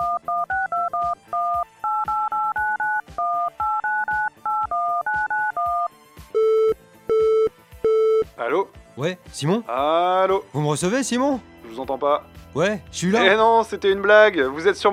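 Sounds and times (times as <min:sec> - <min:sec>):
telephone dialing tones, short two-tone beeps: 0:00.0 - 0:08.3
speech: 0:09.0 - 0:14.9.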